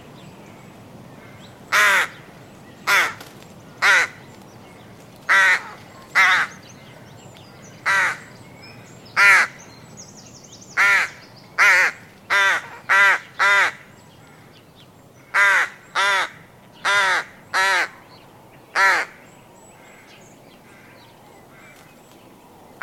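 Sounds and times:
adult rook giving hoarse raspy caws: 0:01.2 - 0:04.3, 0:05.3 - 0:06.6, 0:07.8 - 0:08.3, 0:09.2 - 0:09.6, 0:10.8 - 0:14.6, 0:15.2 - 0:18.0, 0:18.8 - 0:19.2, 0:19.8 - 0:21.9.

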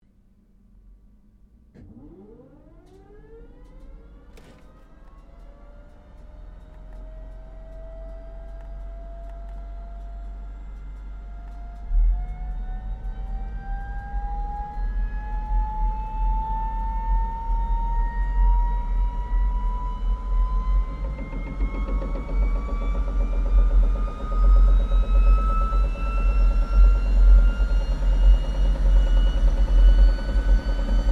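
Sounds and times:
1947 Gloster Meteor F Mk8 fighter jet engine startup heard from interior: 0:01.7 - 0:31.0.

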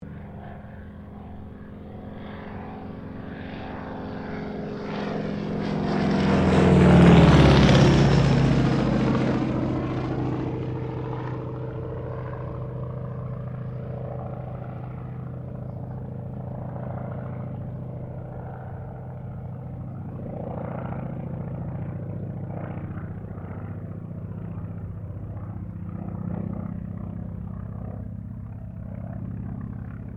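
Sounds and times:
CAC Wirraway CA-16 aircraft passing: 0:00.0 - 0:30.1.

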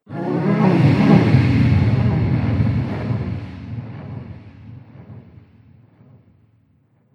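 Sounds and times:
alien sex sound effect: 0:00.1 - 0:05.2.

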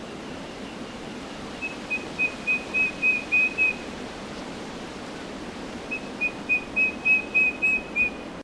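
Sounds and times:
steady hiss: 0:00.0 - 0:08.4
Eastern yellow robin whistled piping in Queensland: 0:01.6 - 0:03.8, 0:05.9 - 0:08.3.

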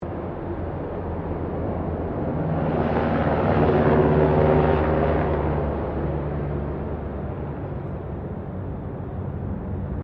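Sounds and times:
Eurocopter AS350 Squirrel helicopter passing: 0:00.1 - 0:10.0.

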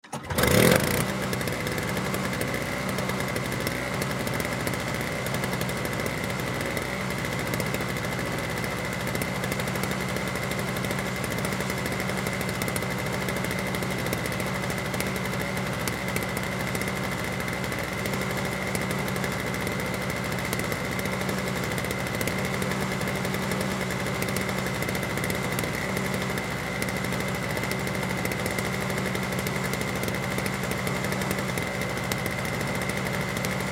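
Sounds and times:
household snow blower pull start: 0:00.0 - 0:33.6.

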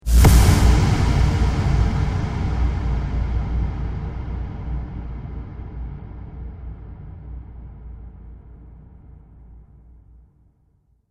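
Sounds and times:
dark cinematic hits: 0:00.0 - 0:08.8.

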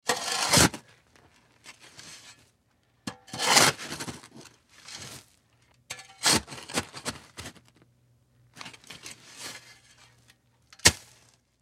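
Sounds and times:
shovel digging dirt: 0:00.1 - 0:00.8, 0:03.1 - 0:05.2, 0:05.9 - 0:07.5, 0:10.8 - 0:11.2.

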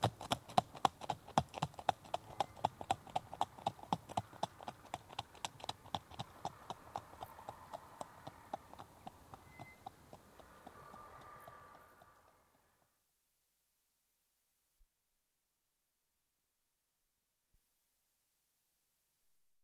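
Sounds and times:
horse hooves trotting fast on tarmac: 0:00.0 - 0:12.7.

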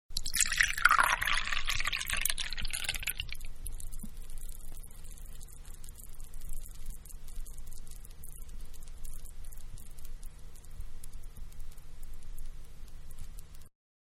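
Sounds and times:
wine pouring into a small glass: 0:00.2 - 0:03.5.

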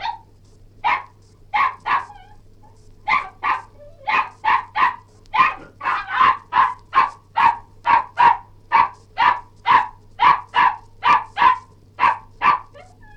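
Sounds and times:
Cairn terrier barking and yelping: 0:00.0 - 0:02.4, 0:03.1 - 0:13.1.

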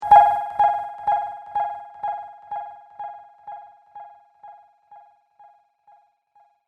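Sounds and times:
warbled electronic bleeps with echo delay: 0:00.0 - 0:03.7.

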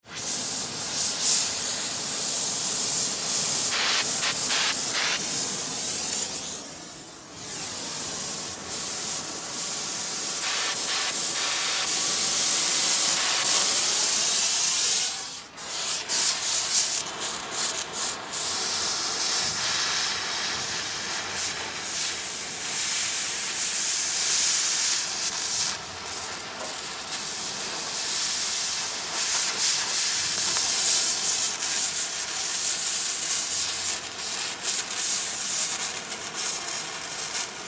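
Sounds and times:
blow torch sizzling and melting metal: 0:00.0 - 0:37.6.

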